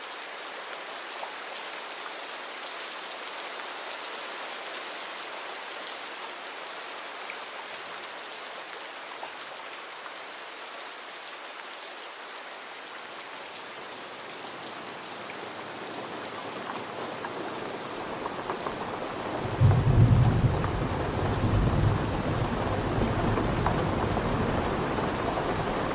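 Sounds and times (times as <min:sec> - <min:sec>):
steady rain: 0:00.0 - 0:25.9
deep rumble of thunder: 0:19.4 - 0:25.8.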